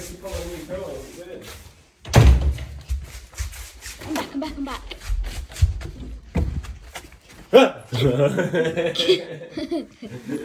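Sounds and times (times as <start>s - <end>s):
door swinging shut with a loud thud: 2.0s - 2.8s
speech: 4.4s - 5.0s, 7.5s - 10.4s
laughter: 7.9s - 10.4s.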